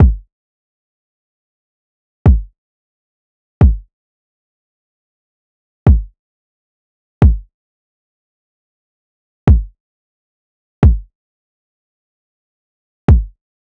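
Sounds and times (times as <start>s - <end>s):
kick drum loop at 133: 0.0s - 0.2s, 2.3s - 2.5s, 3.6s - 3.9s, 5.9s - 6.1s, 7.2s - 7.5s, 9.5s - 9.7s, 10.8s - 11.1s, 13.1s - 13.3s.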